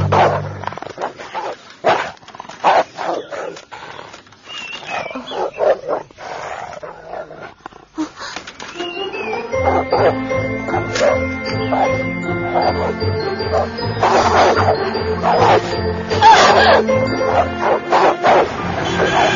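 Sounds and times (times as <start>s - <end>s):
several dogs barking: 0.0s - 3.7s, 5.0s - 7.4s, 9.0s - 19.3s
dogs whimpering with sharp yelps and thin whines: 3.1s - 7.2s, 8.4s - 19.3s.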